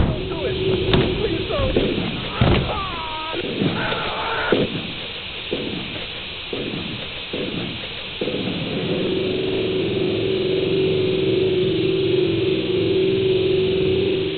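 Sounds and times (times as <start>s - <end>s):
voice: 0.0s - 4.1s
disturbing noise shots: 0.0s - 14.3s.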